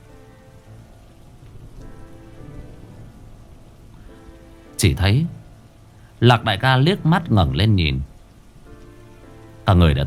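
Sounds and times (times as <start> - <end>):
heavy rain falling at night on an open road: 0.0 - 10.0
speech: 4.8 - 5.4, 6.2 - 8.1, 9.7 - 10.0.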